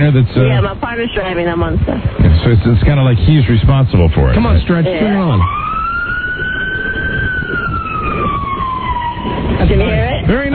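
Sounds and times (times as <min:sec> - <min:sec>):
speech: 0:00.0 - 0:05.6, 0:09.6 - 0:10.5
rumbling engine and road noise: 0:00.0 - 0:10.5
ambulance emergency siren wailing: 0:04.3 - 0:10.5.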